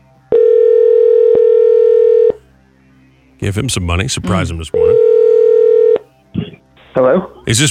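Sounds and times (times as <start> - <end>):
telephone dial tone: 0.3 - 2.4, 4.9 - 6.0
speech: 3.4 - 5.0, 7.0 - 7.6.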